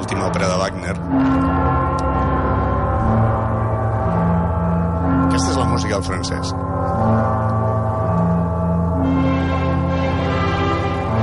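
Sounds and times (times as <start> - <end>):
deep resonant castle bells tolling: 0.0 - 11.2
loud sustained orchestral opera music: 0.0 - 11.2
speech: 0.2 - 1.3, 5.9 - 7.2.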